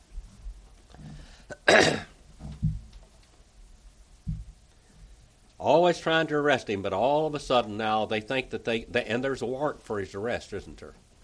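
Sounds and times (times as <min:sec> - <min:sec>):
sharp harsh cough: 0:01.5 - 0:02.2
speech: 0:05.6 - 0:11.0.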